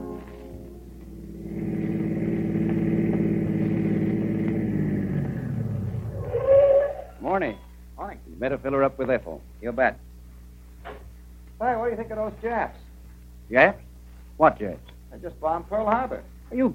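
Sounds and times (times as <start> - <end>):
car engine pulling into a filling station and idling: 1.0 - 6.3
speech: 8.4 - 10.1, 11.6 - 12.8, 13.5 - 16.7.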